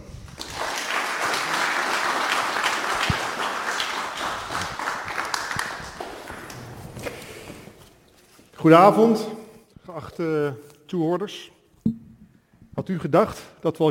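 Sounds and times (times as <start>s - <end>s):
small audience applauding: 0.0s - 7.8s
speech: 8.6s - 9.4s, 10.1s - 11.6s, 12.9s - 13.8s.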